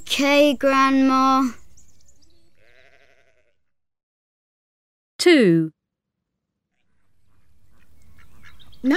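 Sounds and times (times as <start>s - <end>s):
faint farmyard noise: 0.1s - 3.7s, 6.7s - 8.9s
speech: 0.2s - 1.6s, 5.2s - 5.8s
goat bleating: 2.5s - 3.6s.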